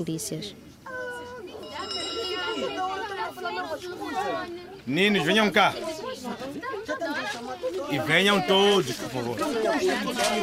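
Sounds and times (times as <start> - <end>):
speech: 0.0 - 1.0, 2.6 - 10.4
crowd of children chattering and shouting: 0.0 - 10.4
school bell ringing in a school playground: 1.5 - 4.5.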